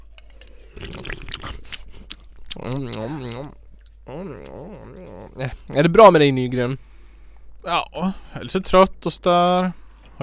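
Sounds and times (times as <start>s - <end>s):
crunching of chips being chewed: 0.1s - 5.1s
speech: 2.6s - 6.9s, 7.6s - 10.2s.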